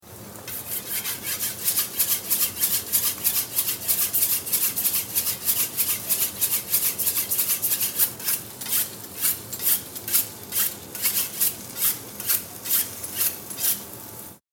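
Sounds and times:
knife sharpening at a snack stand: 0:00.5 - 0:13.8.

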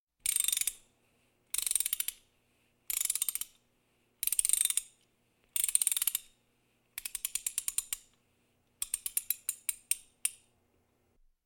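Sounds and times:
ratchet clicking during household DIY work: 0:00.2 - 0:00.8, 0:01.5 - 0:02.2, 0:02.9 - 0:03.6, 0:04.2 - 0:05.0, 0:05.6 - 0:06.3, 0:07.0 - 0:08.1, 0:08.8 - 0:10.4.

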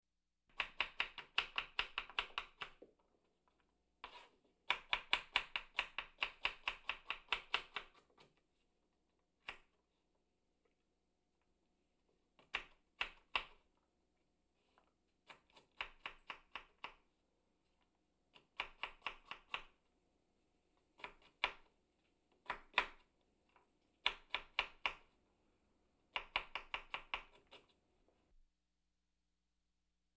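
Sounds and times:
chopping vegetables in a kitchen: 0:00.5 - 0:02.9, 0:04.0 - 0:08.4, 0:15.2 - 0:17.0, 0:18.3 - 0:19.8, 0:20.8 - 0:21.7, 0:22.3 - 0:23.1, 0:24.0 - 0:25.1, 0:26.1 - 0:27.8.

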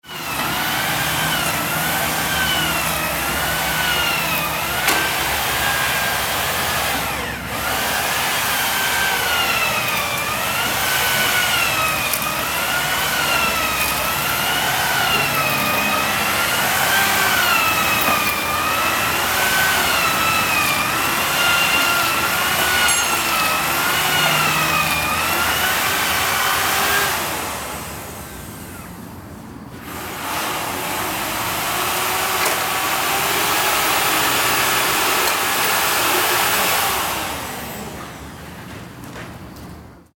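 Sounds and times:
power drill: 0:00.0 - 0:29.0, 0:29.8 - 0:38.2.

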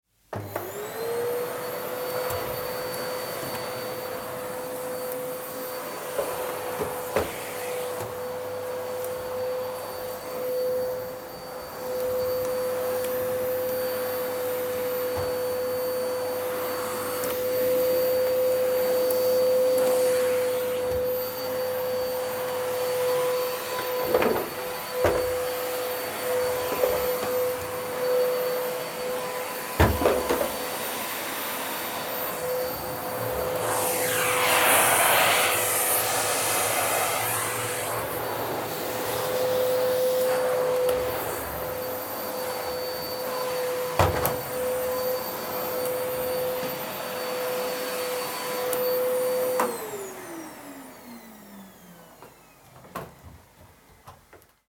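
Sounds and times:
vacuum cleaner: 0:00.0 - 0:54.7.

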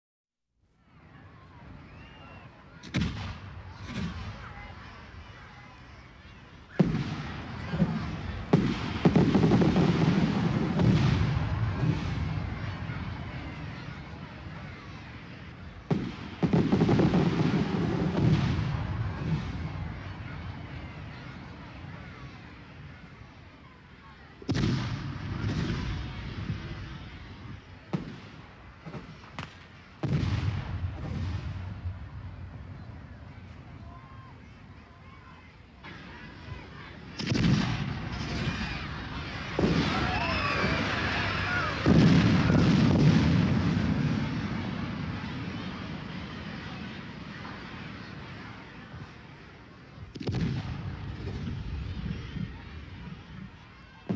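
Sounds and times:
crowd noise in a big city: 0:00.6 - 0:54.1
city fireworks exploding: 0:02.8 - 0:05.5, 0:06.7 - 0:23.0, 0:24.4 - 0:54.1.

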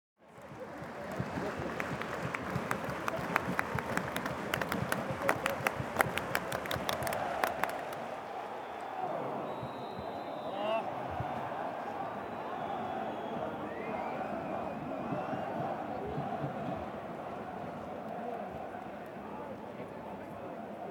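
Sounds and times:
stadium fans clapping: 0:00.2 - 0:20.8.

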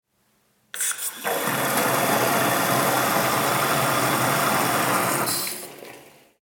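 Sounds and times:
toilet flushing: 0:00.8 - 0:06.4.

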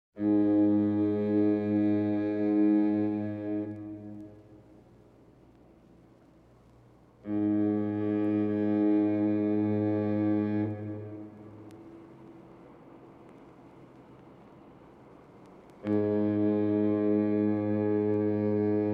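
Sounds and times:
marine foghorn: 0:00.2 - 0:05.0, 0:07.2 - 0:12.8, 0:15.6 - 0:18.9.

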